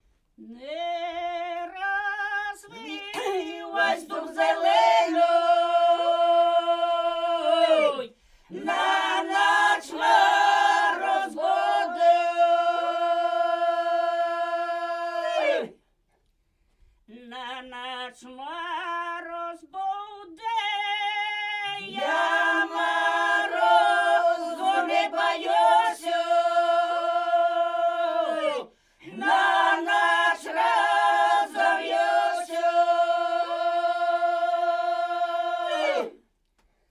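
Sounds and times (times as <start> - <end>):
polyphonic singing from Polesie in Ukraine: 0.4 - 15.7, 20.4 - 36.2.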